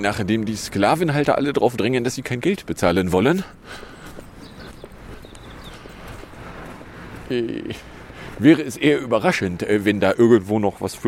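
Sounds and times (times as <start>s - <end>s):
speech: 0.0s - 3.9s, 7.3s - 11.0s
outdoor hum: 0.0s - 11.0s
horse hooves clip-clopping: 3.3s - 8.9s.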